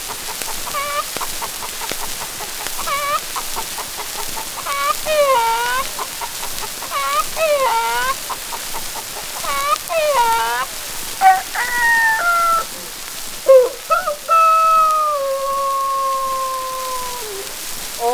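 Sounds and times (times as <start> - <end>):
hen cackling at a hen roost: 0.1 - 18.1
several roosters crowing: 0.4 - 18.1.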